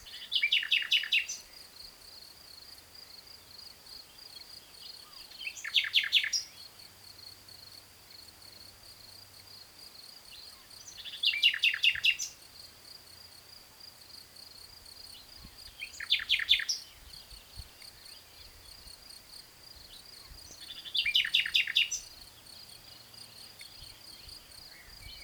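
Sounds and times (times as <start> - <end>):
common nightingale Luscinia megarhynchos singing: 0.0 - 1.6, 4.0 - 6.9, 10.2 - 12.4, 15.0 - 19.0, 19.8 - 25.2.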